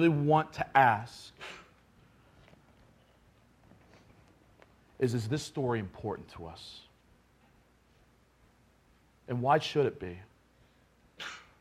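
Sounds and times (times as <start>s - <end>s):
speech: 0.0s - 1.6s, 5.0s - 6.9s, 9.3s - 10.3s, 11.2s - 11.4s
person sneezing: 1.3s - 1.8s, 11.2s - 11.5s.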